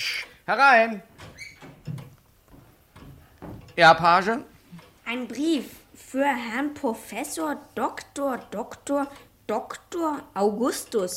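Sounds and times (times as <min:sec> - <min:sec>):
speech: 0:00.5 - 0:01.2, 0:03.8 - 0:04.5, 0:05.1 - 0:11.1
door swinging open with a short high creak: 0:01.1 - 0:03.9
dull wooden knocks and bumps: 0:01.1 - 0:04.0.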